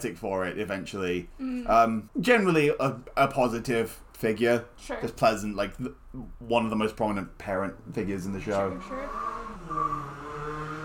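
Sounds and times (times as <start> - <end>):
speech: 0.0 - 10.0
sports car engine humming as it drives by outside: 8.4 - 10.8.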